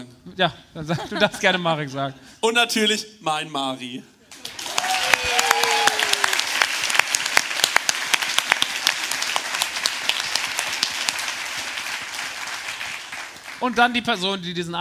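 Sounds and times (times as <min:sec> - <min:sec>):
speech: 0:00.4 - 0:04.1, 0:13.6 - 0:14.7
audience applause: 0:04.3 - 0:14.1.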